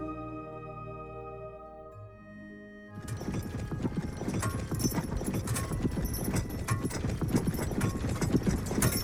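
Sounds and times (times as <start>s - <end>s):
soft tonal music: 0.0s - 9.0s
horse hooves clip-clopping as a horse-drawn wagon rolls along a lonely road: 3.0s - 9.0s.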